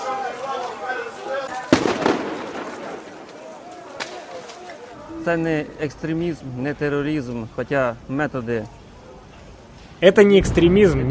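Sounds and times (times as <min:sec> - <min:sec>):
crowd shouting during street clashes: 0:00.0 - 0:05.0
gunfire or blast during street clashes: 0:01.7 - 0:03.2
speech: 0:05.2 - 0:08.8, 0:10.0 - 0:11.1.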